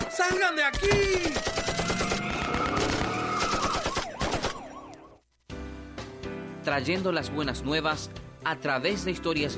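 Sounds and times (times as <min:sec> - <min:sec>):
speech: 0:00.2 - 0:01.9, 0:06.7 - 0:09.5
rapid gunfire in a dramatized police shootout: 0:01.0 - 0:04.8.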